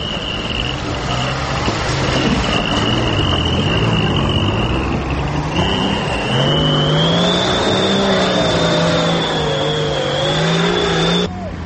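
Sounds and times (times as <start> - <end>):
off-road jeep engines droning and revving in a jeep-cross competition on a bumpy field: 0.0 - 11.6
thin high whine: 2.4 - 11.3.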